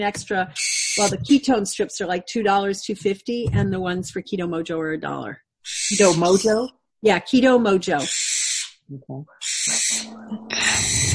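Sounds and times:
speech: 0.0s - 8.2s, 8.9s - 10.4s
owl hooting: 0.6s - 1.2s, 5.6s - 6.6s, 7.9s - 8.8s, 9.4s - 11.1s.

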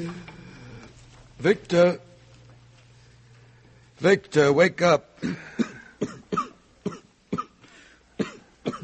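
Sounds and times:
speech: 1.4s - 2.1s, 4.0s - 6.1s
person coughing harshly: 5.2s - 7.6s, 8.2s - 8.8s.

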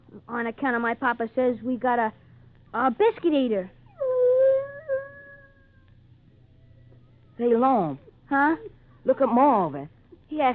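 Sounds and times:
speech: 0.3s - 3.8s, 7.4s - 10.5s
puppy whimpering: 3.8s - 5.9s.

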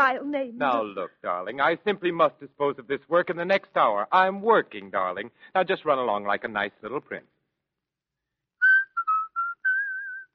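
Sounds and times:
speech: 0.0s - 7.3s
person whistling a short melodic tune: 8.6s - 10.3s.

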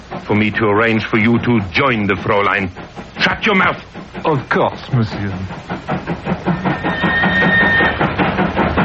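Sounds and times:
Paris passenger train wheels clattering arriving at a station: 0.0s - 8.8s
speech: 0.3s - 7.1s
passenger train brakes squealing: 6.3s - 8.8s.

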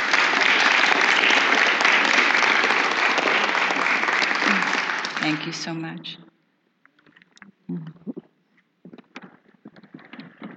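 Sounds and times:
applause from a sizable audience: 0.0s - 5.7s
speech: 5.2s - 6.3s.

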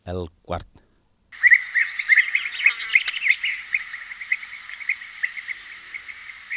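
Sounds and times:
European bee-eater flocks giving bubbling gluc flight calls during migration: 1.4s - 6.5s.

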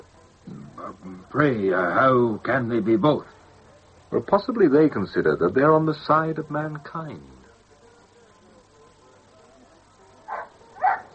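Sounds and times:
speech: 0.8s - 3.4s, 4.1s - 7.4s
dog barking: 10.3s - 11.1s.

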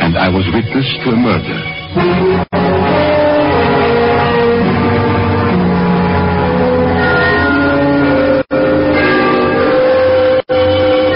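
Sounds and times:
speech: 0.3s - 2.7s
church bells chiming the three-quarter hour: 3.4s - 11.1s.

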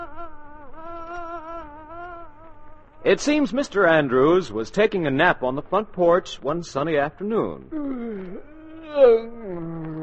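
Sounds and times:
fly buzzing as it circles: 0.0s - 3.2s
speech: 3.0s - 9.7s.

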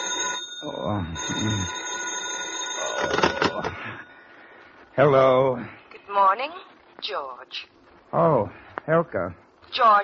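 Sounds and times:
telephone bell ringing with a bright metallic trill: 0.0s - 4.2s
speech: 0.8s - 1.8s, 3.0s - 4.0s, 5.0s - 10.0s.

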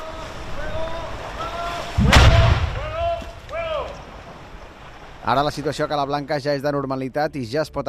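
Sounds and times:
81 mm mortar bomb detonated underwater off the shore of a beach: 1.9s - 5.7s
speech: 5.3s - 7.8s.

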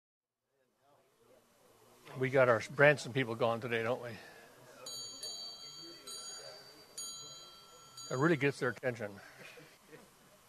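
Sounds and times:
faint murmur: 0.5s - 10.4s
speech: 2.2s - 4.3s, 8.1s - 9.3s
small bell ringing: 4.8s - 8.8s.

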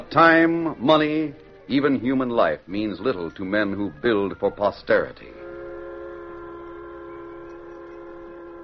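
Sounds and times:
speech: 0.1s - 5.4s
sustained droning whistle or horn tone: 5.2s - 8.6s.

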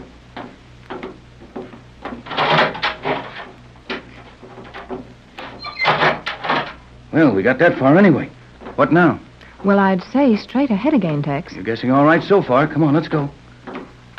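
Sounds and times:
low steady hum: 0.0s - 14.1s
heavy steel door grinding and rattling as it slides open: 2.2s - 4.8s, 5.4s - 6.8s
speech: 7.2s - 13.4s.

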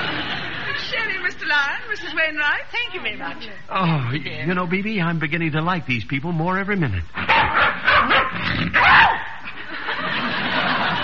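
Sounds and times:
laughter: 0.0s - 1.3s, 9.4s - 11.0s
steady hiss: 0.0s - 11.0s
speech: 1.3s - 9.0s
small dog barking and yipping: 7.3s - 9.4s.

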